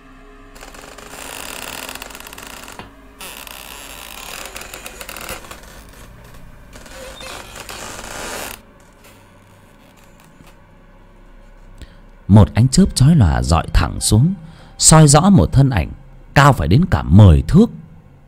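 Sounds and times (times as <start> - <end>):
old rusty door hinges creaking: 0.5 - 10.6
speech: 12.3 - 17.8.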